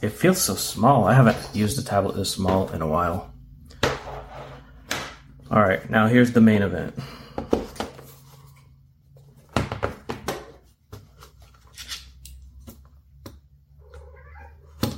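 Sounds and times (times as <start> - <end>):
speech: 0.0 - 3.3, 5.5 - 7.2
cat meowing: 13.8 - 14.8.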